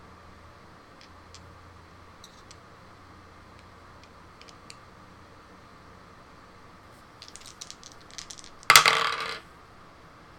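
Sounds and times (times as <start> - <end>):
dice clattering on a hard tabletop: 2.2 - 2.6, 4.0 - 4.8, 7.2 - 9.4.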